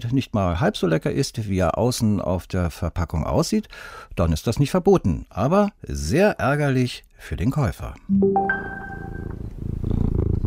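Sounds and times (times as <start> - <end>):
speech: 0.0 - 9.3
domestic tomcat purring in the British prime minister's residence: 9.2 - 10.4.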